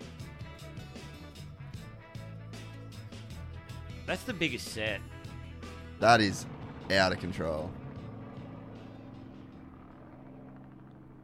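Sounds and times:
speech: 0:04.1 - 0:05.1, 0:06.0 - 0:07.8
helicopter engine droning from a video being played: 0:05.1 - 0:11.2.

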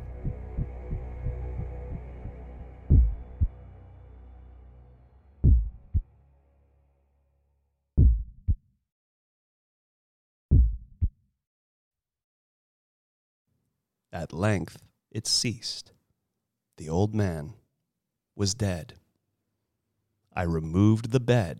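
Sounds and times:
muffled heartbeat in low double beats: 0:00.0 - 0:02.1, 0:02.9 - 0:03.5, 0:05.4 - 0:06.0, 0:08.0 - 0:08.6, 0:10.5 - 0:11.1
faint rumbling hum: 0:00.0 - 0:06.1
speech: 0:14.1 - 0:16.0, 0:16.8 - 0:17.6, 0:18.4 - 0:19.0, 0:20.4 - 0:21.5.

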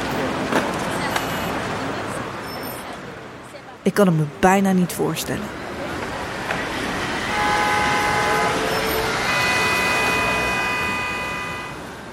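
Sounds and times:
busy city street traffic rumbling: 0:00.0 - 0:12.1
speech: 0:03.8 - 0:05.6
loud sustained car horn blasts: 0:07.2 - 0:11.9.

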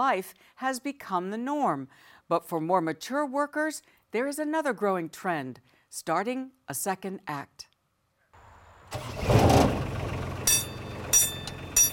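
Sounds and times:
speech: 0:00.0 - 0:07.7, 0:08.9 - 0:09.4
miniature amusement ride train engine chugging: 0:09.8 - 0:11.9.

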